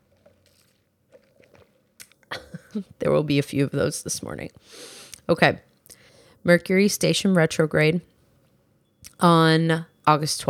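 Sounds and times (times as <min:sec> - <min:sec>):
person sipping iced coffee with soft slurping: 0:00.0 - 0:02.8
speech: 0:02.8 - 0:05.7, 0:06.4 - 0:08.1, 0:09.2 - 0:10.4.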